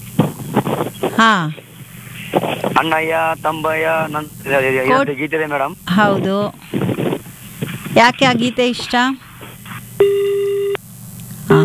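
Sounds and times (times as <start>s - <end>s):
low hum: 0.0s - 11.6s
speech: 1.1s - 1.6s, 2.3s - 6.8s, 8.0s - 9.2s
telephone busy tone after a call drops: 10.0s - 10.8s, 11.5s - 11.6s.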